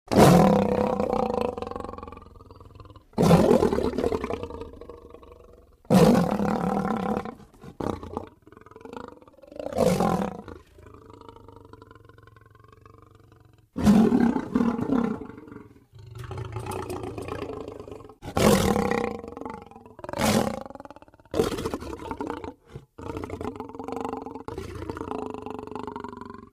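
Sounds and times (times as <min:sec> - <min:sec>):
lion growl: 0:00.1 - 0:26.5.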